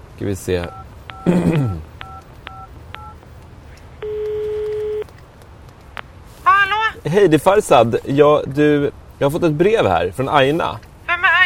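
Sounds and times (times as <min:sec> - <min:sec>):
speech: 0:00.2 - 0:01.9, 0:07.0 - 0:10.9
telephone keypad tones as a number is dialed: 0:00.7 - 0:01.3, 0:02.0 - 0:03.2, 0:04.0 - 0:05.2
steady telephone tone: 0:04.0 - 0:05.1.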